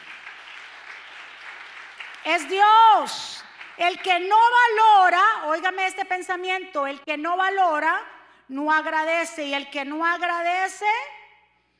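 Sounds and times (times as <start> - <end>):
crowd applauding: 0.0 - 4.3
speech: 2.2 - 11.2.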